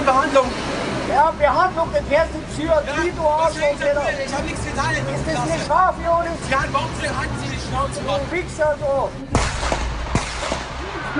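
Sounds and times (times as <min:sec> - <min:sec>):
steady noisy outdoor noise: 0:00.0 - 0:11.1
speech: 0:00.2 - 0:09.5
gunshots fired from a parking deck: 0:09.3 - 0:11.0.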